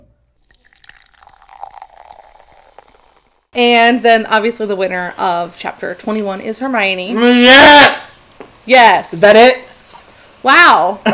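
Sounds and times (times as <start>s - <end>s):
cork popping: 0.4s - 3.5s
liquid pouring steadily into a glass: 0.4s - 3.5s
speech: 3.6s - 8.0s, 8.7s - 9.6s, 10.4s - 11.1s.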